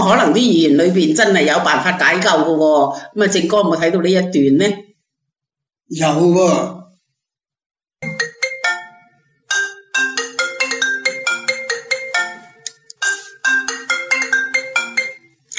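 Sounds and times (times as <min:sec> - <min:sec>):
speech: 0:00.0 - 0:04.9, 0:05.9 - 0:06.8
phone ringtone jingle for an incoming call: 0:08.0 - 0:15.5.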